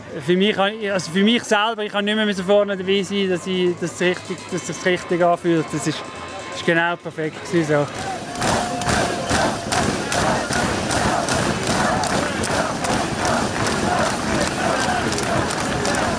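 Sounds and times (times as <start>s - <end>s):
speech: 0.2s - 8.6s
spectators cheering at a mountain bike race: 7.8s - 16.1s
rhythmic thumps and bangs: 7.9s - 16.1s.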